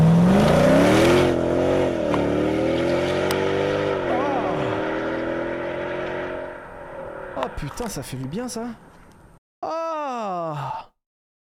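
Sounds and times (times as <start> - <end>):
car engine revving through its exhaust: 0.0 - 7.6
speech: 7.6 - 9.0.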